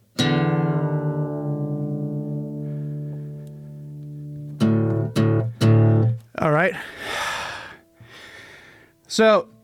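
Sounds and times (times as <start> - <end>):
low guitar string plucked while tuned down to drop D: 0.2 - 6.3
speech: 6.5 - 7.0, 9.1 - 9.5.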